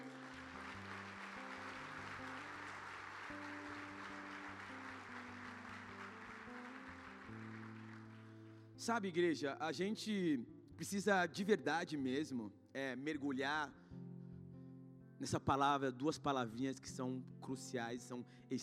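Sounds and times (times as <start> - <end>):
crowd clapping: 0.0 - 8.9
speech: 8.8 - 13.8, 15.2 - 18.6.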